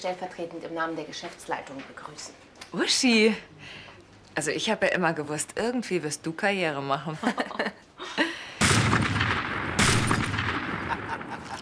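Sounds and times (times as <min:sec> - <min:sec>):
speech: 0:00.0 - 0:08.3
laughter: 0:07.2 - 0:08.4, 0:10.8 - 0:11.6
gunshots fired as a double shot: 0:08.6 - 0:11.5.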